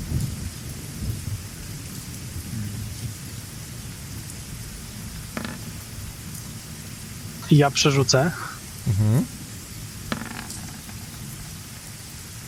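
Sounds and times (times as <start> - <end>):
sharp thunder crack: 0.0 - 3.2
heavy rain downpour: 0.0 - 12.4
low rumbling thunder: 0.0 - 12.4
speech: 7.5 - 9.4.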